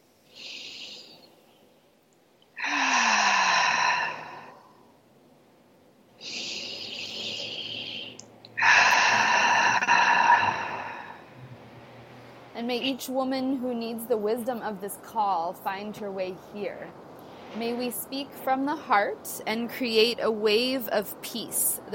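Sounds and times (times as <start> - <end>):
deep breaths inhaling through the nose and exhaling through the mouth: 0.3 - 1.5, 2.6 - 4.9, 6.2 - 11.4, 17.1 - 17.6
speech: 12.7 - 21.9.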